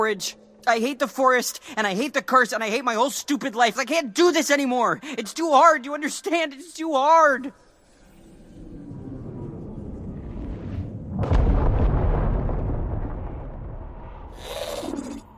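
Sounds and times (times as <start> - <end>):
speech: 0.0 - 7.6
explosion with deep rolling boom: 8.6 - 15.3.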